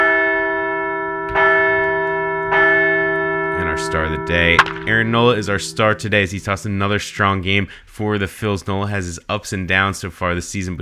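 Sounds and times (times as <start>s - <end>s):
large bell ringing: 0.0s - 7.7s
speech: 3.8s - 10.7s.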